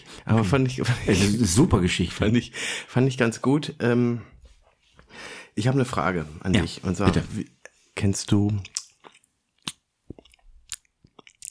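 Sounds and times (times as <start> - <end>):
speech: 0.2 - 4.4, 5.6 - 8.8
wet smacking chewing with crunchy bites: 8.5 - 11.4.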